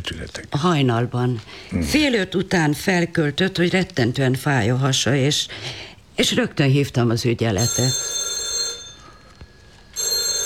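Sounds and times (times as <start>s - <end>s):
faint noise: 0.0s - 10.4s
speech: 0.1s - 8.2s
telephone bell ringing: 7.6s - 10.4s.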